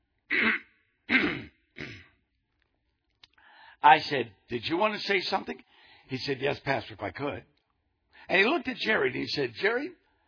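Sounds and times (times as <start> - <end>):
man's voice imitating throat clearing: 0.3 - 2.2
speech: 3.8 - 7.5, 8.2 - 10.0.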